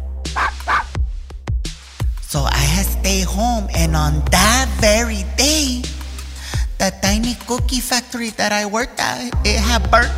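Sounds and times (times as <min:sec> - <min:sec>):
dog barking: 0:00.3 - 0:01.0
speech: 0:02.3 - 0:05.9, 0:06.8 - 0:10.1.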